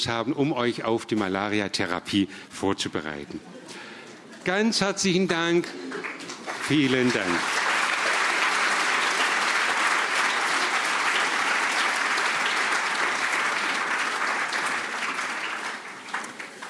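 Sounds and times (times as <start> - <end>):
speech: 0.0 - 3.8, 4.4 - 7.6
large crowd audience applause: 5.6 - 16.6.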